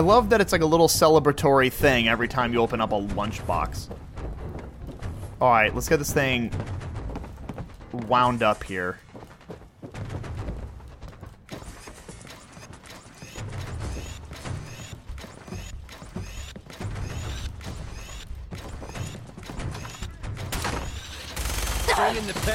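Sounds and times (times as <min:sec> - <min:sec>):
speech: 0:00.0 - 0:04.1, 0:05.4 - 0:06.9, 0:07.9 - 0:09.0
gunfire from a shooting video game: 0:11.4 - 0:22.5.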